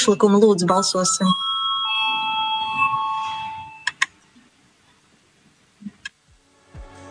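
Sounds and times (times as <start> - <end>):
speech: 0.0 - 1.5
voting bell ringing in a parliament session: 0.0 - 3.9
brief tonal chime: 0.7 - 3.9.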